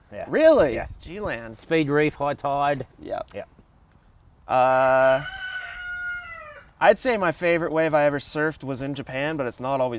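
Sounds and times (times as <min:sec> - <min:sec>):
speech: 0:00.1 - 0:03.5, 0:04.5 - 0:05.4, 0:06.8 - 0:09.9
rooster crowing: 0:05.0 - 0:06.8.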